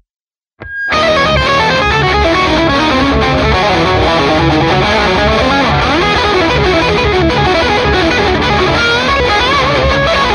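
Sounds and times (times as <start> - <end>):
solo through amplifier channel B: 0.6 - 10.3.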